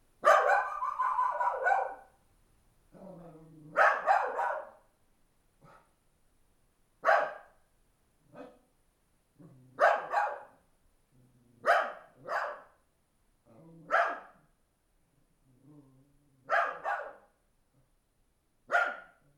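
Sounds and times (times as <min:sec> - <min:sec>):
night village ambience: 0:00.0 - 0:19.0
dog barking at night in a village: 0:00.2 - 0:02.2, 0:03.7 - 0:04.8, 0:05.6 - 0:05.9, 0:07.0 - 0:07.6, 0:08.3 - 0:08.6, 0:09.8 - 0:10.6, 0:11.6 - 0:12.8, 0:13.9 - 0:14.5, 0:16.4 - 0:17.4, 0:18.7 - 0:19.2.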